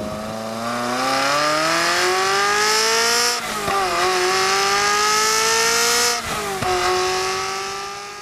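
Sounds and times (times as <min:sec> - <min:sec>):
naturally aspirated V8 engine revving hard: 0:00.0 - 0:08.2.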